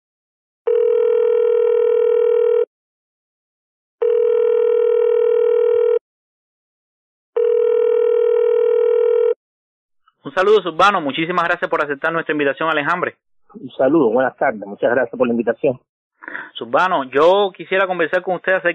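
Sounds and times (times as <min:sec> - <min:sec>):
telephone ringing tone as a call is placed: 0:00.7 - 0:02.7, 0:04.0 - 0:06.0, 0:07.4 - 0:09.4
speech: 0:10.4 - 0:18.7.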